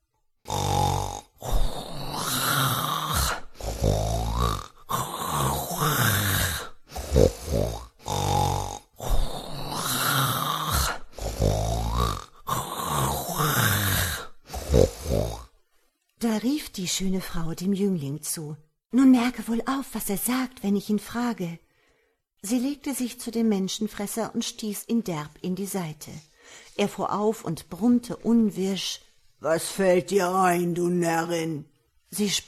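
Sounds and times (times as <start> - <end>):
loud rasping snoring with snorting exhales: 0.4 - 15.6
speech: 16.8 - 21.6, 22.4 - 32.4.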